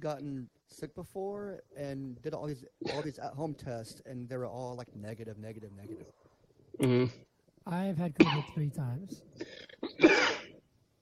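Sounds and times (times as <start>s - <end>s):
speech: 0.0s - 10.4s
single short rough cough: 2.9s - 3.1s, 6.8s - 7.2s, 8.2s - 8.6s, 9.4s - 10.5s.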